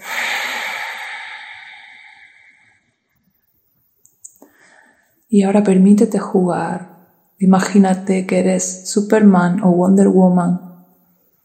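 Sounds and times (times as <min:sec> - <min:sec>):
forceful breathing through the nose: 0:00.0 - 0:02.8
speech: 0:05.3 - 0:10.7.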